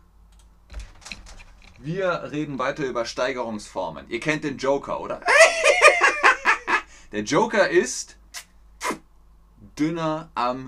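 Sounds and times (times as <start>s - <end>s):
computer keyboard keystrokes: 0.3s - 1.8s
speech: 1.8s - 5.6s, 7.1s - 8.2s, 9.8s - 10.6s
laughter: 5.2s - 6.9s.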